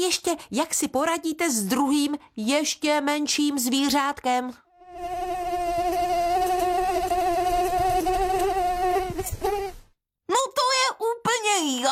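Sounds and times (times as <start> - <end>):
speech: 0.0 - 5.3, 10.3 - 11.8
mosquito buzzing whine: 4.7 - 9.9.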